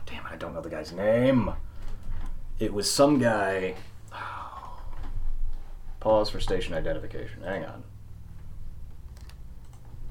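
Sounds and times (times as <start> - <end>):
steady low hum: 0.0 - 10.0
speech: 0.4 - 1.7, 2.6 - 4.3, 6.0 - 7.9
computer mouse and keyboard clicks: 9.1 - 10.0.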